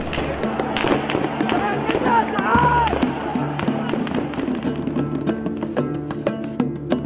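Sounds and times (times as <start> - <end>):
gunshots fired at protesters: 0.0 - 4.9
people shouting: 0.0 - 5.2
crowd noise: 0.0 - 7.0.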